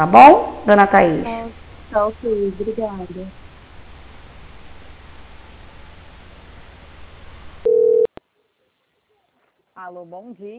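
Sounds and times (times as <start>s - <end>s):
speech: 0.0s - 3.4s, 9.8s - 10.5s
telephone line hiss on hold during a call transfer: 5.8s - 8.1s
telephone line tone during a call transfer: 7.6s - 8.1s.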